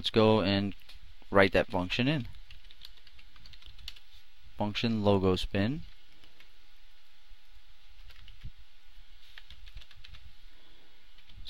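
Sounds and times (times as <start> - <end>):
speech: 0.0 - 2.4, 4.6 - 5.9
typing code on a computer keyboard: 2.2 - 4.0, 8.0 - 8.5, 9.3 - 10.3.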